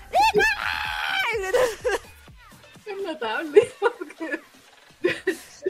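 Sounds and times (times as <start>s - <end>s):
person imitating hysterical fans screaming at a concert: 0.2s - 1.4s
laughter: 1.3s - 2.2s, 3.4s - 5.6s.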